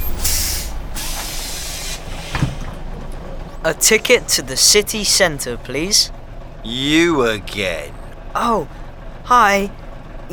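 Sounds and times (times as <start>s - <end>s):
bus air brakes hissing: 0.0s - 2.6s
bus engine rumbling: 0.0s - 10.3s
speech: 3.6s - 10.3s.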